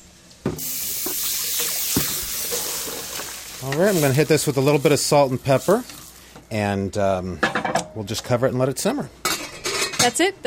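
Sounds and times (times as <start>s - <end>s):
water pouring into a soup pot of diced vegetables: 0.6s - 6.3s
speech: 3.6s - 9.2s, 10.0s - 10.4s.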